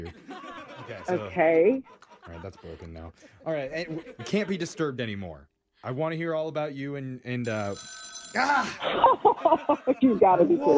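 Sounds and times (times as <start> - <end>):
laughter: 0.0 - 5.0, 8.6 - 10.7
speech: 0.9 - 10.7
old rotary telephone bell ringing: 7.5 - 8.8.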